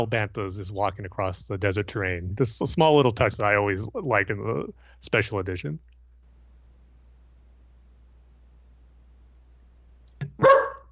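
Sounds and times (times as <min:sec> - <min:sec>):
speech: 0:00.0 - 0:05.9
female dog yip: 0:10.4 - 0:10.9.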